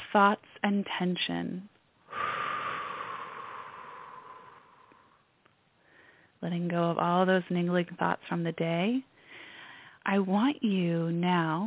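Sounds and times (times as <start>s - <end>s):
speech: 0.2s - 1.7s, 6.4s - 9.1s, 10.0s - 11.6s
deep breath out during guided relaxation: 2.0s - 6.4s, 9.2s - 10.0s.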